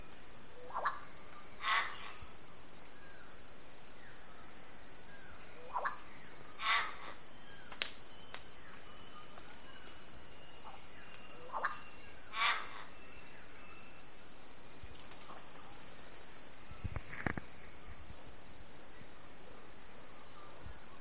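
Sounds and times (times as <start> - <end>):
steady high insect drone: 0.0 - 20.9
yellow-faced myna calls: 1.6 - 2.2, 6.6 - 7.2, 12.3 - 12.9.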